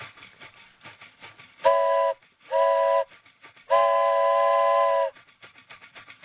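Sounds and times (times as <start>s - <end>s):
faint rumbling and clatter: 0.0s - 6.2s
foley imitation of a steam train whistle: 1.6s - 5.4s.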